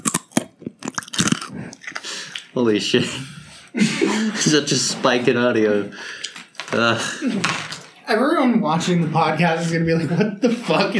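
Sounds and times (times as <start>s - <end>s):
person chewing crunchy food: 0.0s - 2.5s
speech: 2.6s - 10.9s
laughter: 3.7s - 4.7s.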